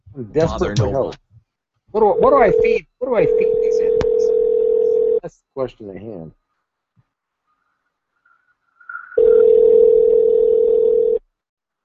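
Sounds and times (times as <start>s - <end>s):
speech: 0.2s - 1.2s, 1.9s - 3.9s, 5.2s - 6.4s
telephone dial tone while calling someone back: 3.4s - 5.2s, 9.2s - 11.2s.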